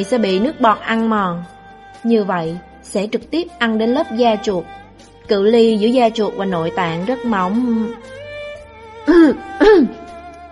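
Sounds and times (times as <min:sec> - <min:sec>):
speech: 0:00.0 - 0:08.2, 0:09.0 - 0:10.0
dry cough: 0:09.1 - 0:10.0
throat clearing: 0:09.1 - 0:10.0.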